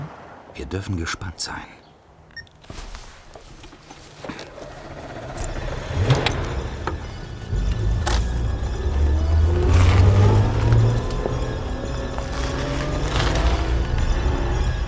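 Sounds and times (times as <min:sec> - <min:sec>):
speech: 0:00.6 - 0:01.9
car engine starting and revving: 0:04.3 - 0:14.8.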